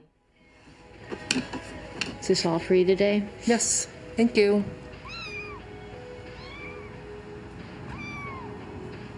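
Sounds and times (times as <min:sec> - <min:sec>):
steady hum: 0:00.3 - 0:09.1
speech: 0:02.3 - 0:04.8
kitten meowing in a supermarket: 0:05.0 - 0:05.7, 0:06.3 - 0:07.0, 0:07.9 - 0:08.6.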